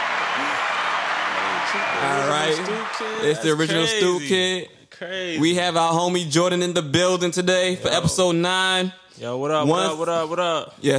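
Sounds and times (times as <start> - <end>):
applause: 0.0 - 4.2
speech: 1.7 - 10.9.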